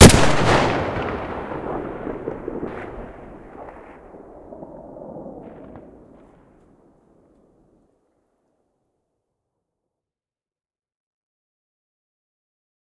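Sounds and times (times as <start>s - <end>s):
sniper rifle gunshot: 0.0s - 3.2s.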